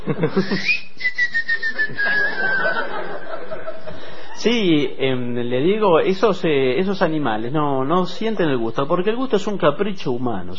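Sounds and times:
laughter: 0.0s - 0.8s, 1.5s - 4.4s
speech: 0.0s - 1.2s, 4.4s - 10.5s
long descending whistle: 0.4s - 2.8s.

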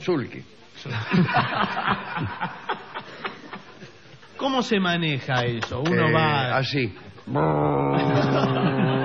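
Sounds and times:
speech: 0.0s - 2.8s, 4.4s - 9.0s
laughter: 0.9s - 4.4s, 5.2s - 6.4s, 7.6s - 9.0s
voice imitating a jet ski engine: 7.3s - 9.0s.

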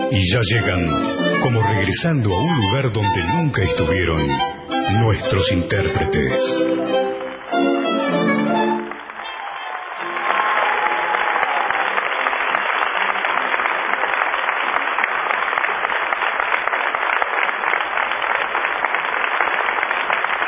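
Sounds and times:
speech: 0.1s - 7.0s
large audience applauding: 0.3s - 20.4s.

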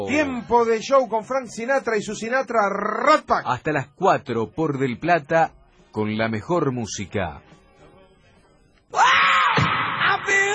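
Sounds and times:
speech: 0.0s - 7.6s
loud drawn-out shout opening the show: 8.9s - 10.5s.

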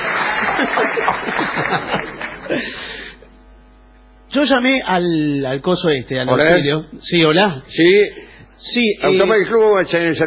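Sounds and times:
audience clapping: 0.0s - 3.0s
audience laughing: 0.0s - 3.0s
speech: 0.6s - 3.0s, 4.3s - 10.2s.

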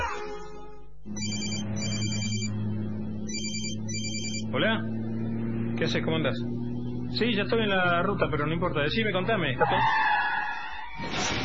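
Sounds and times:
steady low rumbling hum: 0.0s - 8.8s
mobile phone ringing with electronic trills: 0.2s - 2.6s, 3.3s - 4.5s
speech: 4.6s - 5.0s, 5.8s - 10.1s.

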